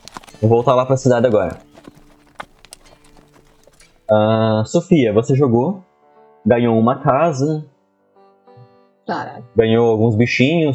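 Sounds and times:
horse hooves clip-clopping: 0:00.0 - 0:04.3
speech: 0:00.4 - 0:01.7, 0:04.1 - 0:07.7, 0:09.1 - 0:10.7.

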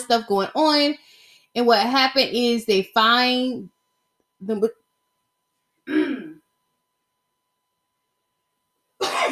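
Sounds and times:
speech: 0:00.1 - 0:03.8, 0:04.4 - 0:04.8, 0:05.9 - 0:06.3
person coughing harshly: 0:05.9 - 0:06.4, 0:09.0 - 0:09.3.

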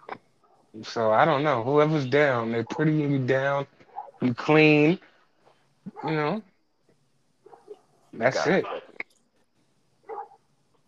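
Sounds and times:
speech: 0:00.7 - 0:05.1, 0:05.9 - 0:06.5, 0:08.2 - 0:08.8
dog barking outdoors: 0:03.8 - 0:04.2, 0:05.9 - 0:06.4, 0:07.4 - 0:09.0, 0:10.0 - 0:10.4.

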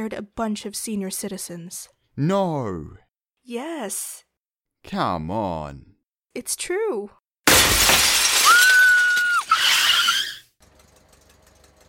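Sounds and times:
speech: 0:00.0 - 0:07.2
car rear window glass shattering from a hatchet strike: 0:07.5 - 0:10.4.

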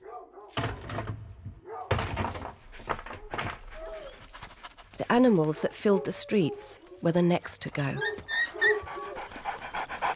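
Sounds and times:
dog panting: 0:02.6 - 0:06.7, 0:07.8 - 0:10.1
speech: 0:05.1 - 0:08.2.

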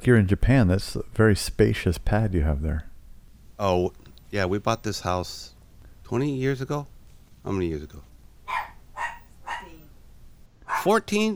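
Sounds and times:
speech: 0:00.0 - 0:02.9, 0:03.6 - 0:08.1, 0:10.8 - 0:11.3
dog barking: 0:08.5 - 0:09.9, 0:10.6 - 0:11.0.

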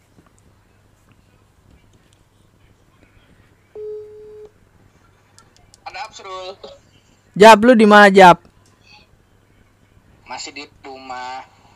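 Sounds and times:
electronic phone ringback tone of a call: 0:03.8 - 0:04.5
speech: 0:06.1 - 0:08.4.

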